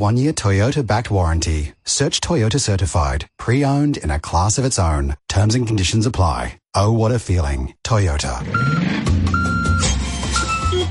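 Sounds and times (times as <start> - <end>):
speech: 0.0 - 9.1
large delivery truck engine rumbling while reversing: 8.3 - 10.9
high electronic reversing beeps of delivery truck: 8.5 - 10.9.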